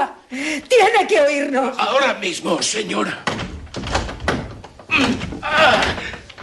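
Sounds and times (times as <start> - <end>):
speech: 0.3 - 3.4
door lock being forced open: 3.2 - 6.4.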